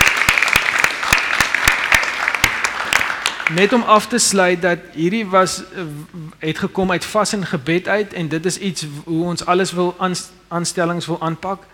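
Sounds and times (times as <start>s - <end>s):
church congregation applauding: 0.0s - 4.2s
speech: 3.5s - 11.7s.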